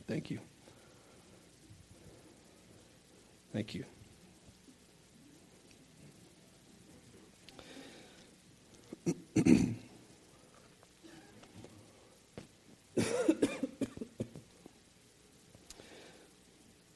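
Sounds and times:
speech: 0.1s - 0.6s, 3.6s - 4.0s
preacher coughing during a sermon: 9.0s - 9.9s, 13.0s - 14.3s.

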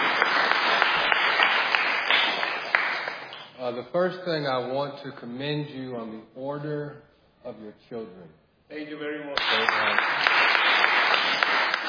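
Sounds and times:
audience clapping: 0.0s - 3.6s, 9.3s - 11.8s
speech: 3.7s - 10.2s.

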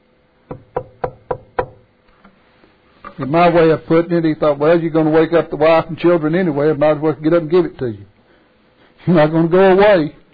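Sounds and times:
knocking on a wooden door: 0.5s - 1.8s
speech: 3.2s - 8.1s, 9.0s - 10.2s.

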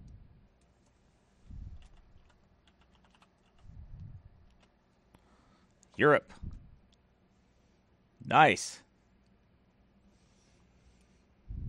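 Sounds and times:
typing on a computer keyboard: 1.8s - 3.7s
speech: 6.0s - 6.5s, 8.3s - 8.8s.

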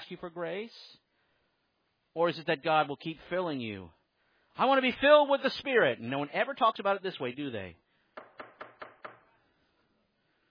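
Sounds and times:
speech: 0.1s - 1.1s, 2.1s - 4.0s, 4.6s - 7.8s
knocking: 8.2s - 9.3s.

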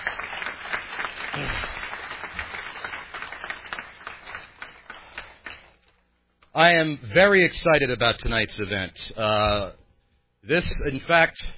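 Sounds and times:
crowd applauding: 0.0s - 5.9s
speech: 6.6s - 9.8s, 10.4s - 11.5s.

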